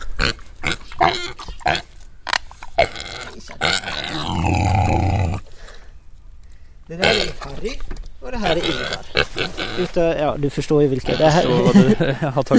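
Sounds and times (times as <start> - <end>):
pig grunting: 0.0 - 1.9, 2.8 - 5.4, 7.0 - 7.5, 8.4 - 10.1, 11.0 - 11.8
speech: 10.0 - 12.5
laughter: 11.2 - 12.5.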